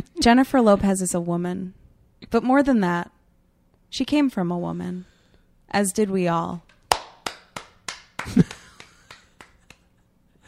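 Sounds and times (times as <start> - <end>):
speech: 0.0 - 3.2, 3.9 - 5.1, 5.7 - 6.7
sharp single claps: 6.7 - 9.9.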